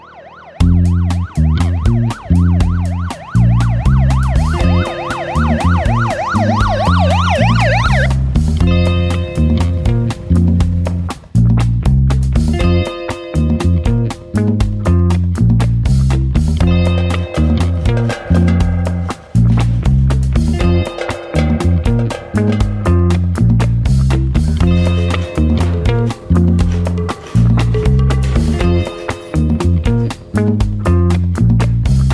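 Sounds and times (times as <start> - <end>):
loud wavering siren-like alarm with bright ringing tones: 0.0 - 8.1
pounding rhythmic beat: 0.6 - 32.1.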